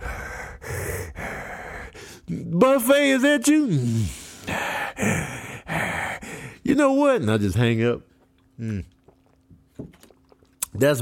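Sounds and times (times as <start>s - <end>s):
person imitating heavy raspy breathing of a phone caller: 0.0s - 2.4s, 3.9s - 6.6s
speech: 2.3s - 5.3s, 6.7s - 8.9s, 10.8s - 11.0s.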